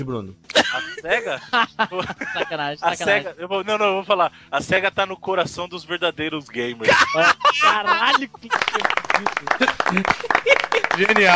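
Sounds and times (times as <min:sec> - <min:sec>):
speech: 0:00.0 - 0:11.3
laughter: 0:00.5 - 0:02.6, 0:06.6 - 0:11.3
dense crackling applause: 0:08.4 - 0:11.3.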